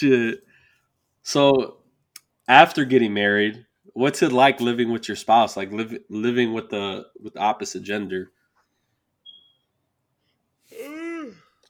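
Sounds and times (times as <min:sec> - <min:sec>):
speech: 0:00.0 - 0:00.5, 0:01.2 - 0:01.8, 0:02.5 - 0:08.4
drawn-out yawn with voiced groan: 0:10.7 - 0:11.6.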